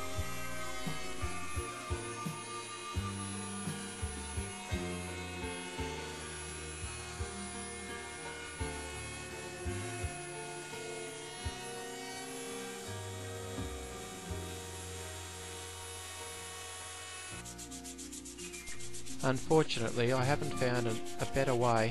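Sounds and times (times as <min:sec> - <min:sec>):
power router rounding off wood edges: 0:00.0 - 0:17.5
speech: 0:19.2 - 0:21.8.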